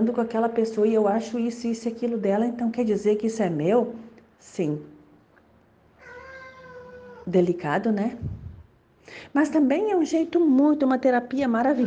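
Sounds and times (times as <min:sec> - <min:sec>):
speech: 0:00.0 - 0:04.9, 0:07.3 - 0:08.4, 0:09.1 - 0:11.8
cat meowing: 0:06.0 - 0:07.3.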